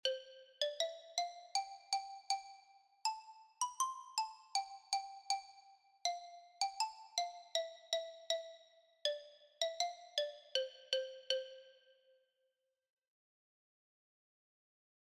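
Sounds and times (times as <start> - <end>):
Orff soprano xylophone: 0.0 - 11.9.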